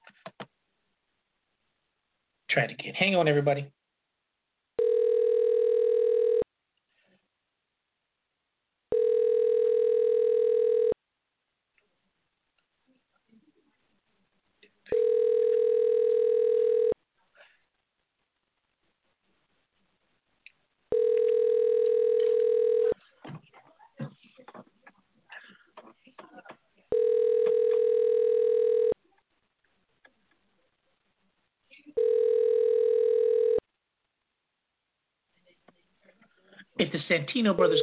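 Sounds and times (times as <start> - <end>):
speech: 2.6 - 3.8, 37.3 - 37.8
telephone ringback tone while an outgoing call waits to connect: 4.8 - 6.4, 8.9 - 11.0, 14.9 - 17.0, 20.9 - 23.0, 26.9 - 29.0, 32.0 - 33.6.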